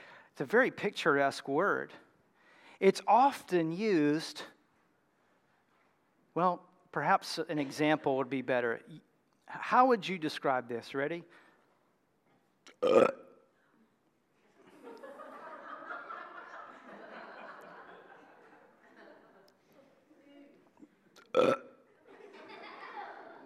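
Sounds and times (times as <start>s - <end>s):
speech: 0.4s - 2.0s, 2.8s - 4.6s, 6.4s - 11.4s, 12.8s - 13.2s, 21.4s - 21.6s
loud abrupt belches: 12.8s - 13.4s, 21.2s - 21.8s
laughter: 14.6s - 20.0s, 21.9s - 23.4s.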